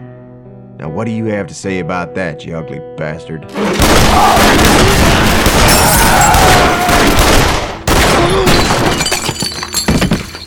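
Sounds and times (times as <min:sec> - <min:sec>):
speech: 0:00.8 - 0:06.0
debris crashing and breaking: 0:03.5 - 0:10.4
gunfire echoing in an enclosed space: 0:03.6 - 0:09.0.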